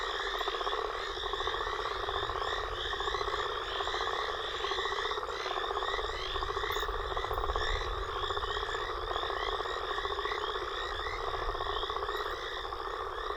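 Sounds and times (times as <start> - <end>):
mixed frog and toad chorus after a storm: 0.0 - 13.3.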